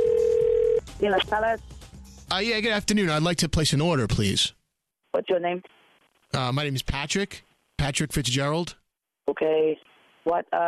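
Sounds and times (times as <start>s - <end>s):
telephone ring tone: 0.0s - 0.8s
speech: 1.0s - 1.7s, 2.3s - 4.6s, 5.2s - 10.6s.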